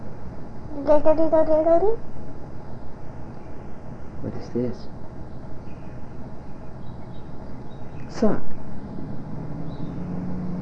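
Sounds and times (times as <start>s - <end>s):
speech: 0.8s - 2.1s, 4.2s - 5.0s, 8.2s - 8.6s
car passing outside: 8.8s - 10.5s.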